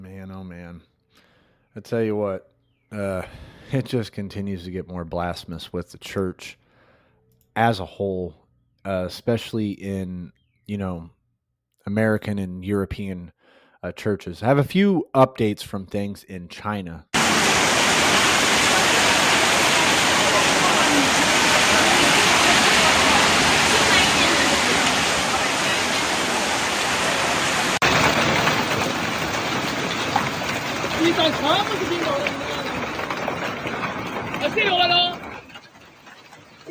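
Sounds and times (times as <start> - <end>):
speech: 0.2 - 6.6, 7.6 - 11.2, 11.8 - 17.1
heavy hailstorm downpour: 17.2 - 36.7.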